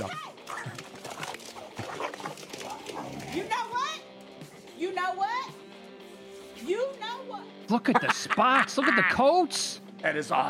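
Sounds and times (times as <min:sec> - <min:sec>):
two dogs fighting, snarling and yelping, played from a video: 0:00.0 - 0:04.8
laughter: 0:07.7 - 0:09.4
speech: 0:07.7 - 0:10.4.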